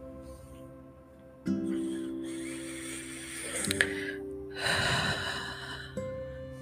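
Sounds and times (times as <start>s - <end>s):
soft sustained musical drone: 0.0s - 6.6s
slow deep breath in and out: 1.6s - 6.4s.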